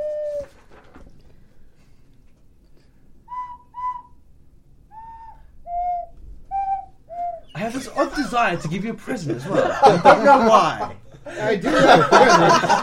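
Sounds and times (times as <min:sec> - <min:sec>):
eerie wavering whistling: 0:00.0 - 0:00.6, 0:03.3 - 0:04.2, 0:04.9 - 0:07.8
laughter: 0:07.6 - 0:12.8
speech: 0:07.7 - 0:12.8.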